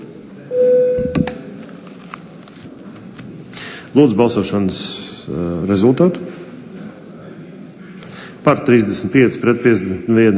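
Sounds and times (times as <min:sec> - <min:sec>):
electronic signal tone of a parliament voting bell: 0:00.5 - 0:01.3
speech: 0:03.9 - 0:06.4, 0:08.5 - 0:10.3.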